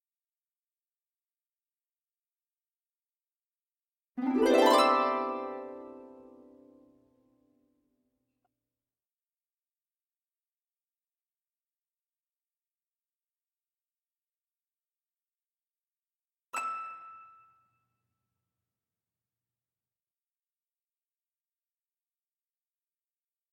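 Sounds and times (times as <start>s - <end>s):
harp: 4.2s - 7.0s.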